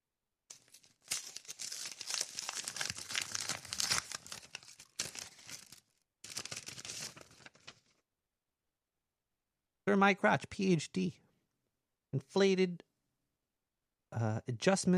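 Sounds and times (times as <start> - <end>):
paper envelope being torn open: 0.5 - 7.9
speech: 9.9 - 11.2, 12.1 - 12.8, 14.1 - 14.9.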